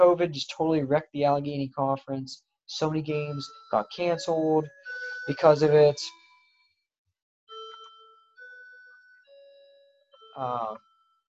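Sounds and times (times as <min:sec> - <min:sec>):
speech: 0:00.0 - 0:06.2, 0:10.4 - 0:10.9
chime ringing bell-like tones: 0:03.1 - 0:06.7, 0:07.5 - 0:11.2.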